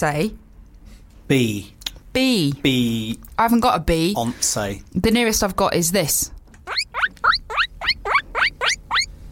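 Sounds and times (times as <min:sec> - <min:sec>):
speech: 0:00.0 - 0:00.4, 0:01.3 - 0:06.4
guinea pig wheeking shrilly: 0:06.6 - 0:09.1.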